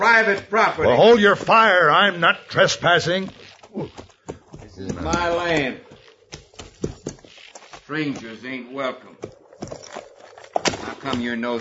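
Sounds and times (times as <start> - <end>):
speech: 0.0 - 4.1, 4.8 - 5.9, 7.9 - 9.8, 10.9 - 11.5
ridden horse's hooves clip-clopping at a walk: 0.0 - 11.5.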